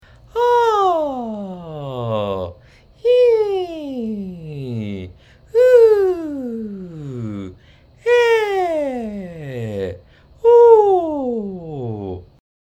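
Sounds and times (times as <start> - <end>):
voice connecting chest voice and falsetto: 0.4 - 12.2.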